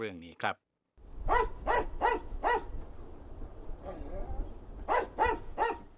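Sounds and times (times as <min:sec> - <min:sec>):
speech: 0:00.0 - 0:00.7
female English Springer Spaniel sniffer dog barking at an airport: 0:01.3 - 0:02.7, 0:04.9 - 0:05.9.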